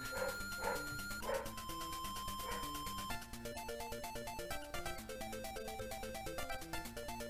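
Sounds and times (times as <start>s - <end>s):
dog barking in the house: 0.0s - 1.6s, 2.4s - 2.8s
bright bouncy chiptune melody: 0.0s - 7.2s.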